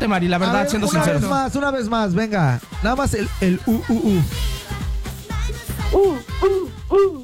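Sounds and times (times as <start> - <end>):
speech: 0.0 - 4.6, 5.9 - 7.2
low rhythmic sound: 0.0 - 7.2
person imitating an owl hooting with their voice: 5.8 - 7.2.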